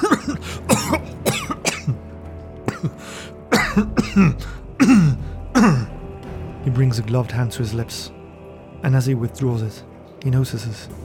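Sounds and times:
harsh coughing spasm: 0.0 - 6.1
speech: 6.9 - 8.2, 8.8 - 11.0.

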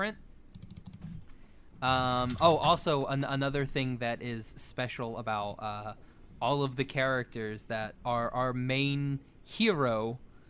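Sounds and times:
speech: 0.0 - 0.2, 1.8 - 10.2
typing on a computer keyboard: 0.5 - 1.2, 1.8 - 2.9.

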